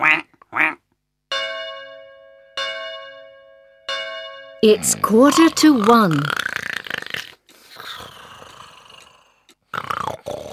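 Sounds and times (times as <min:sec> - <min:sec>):
duck quacking: 0:00.0 - 0:00.8
speech: 0:04.6 - 0:06.5.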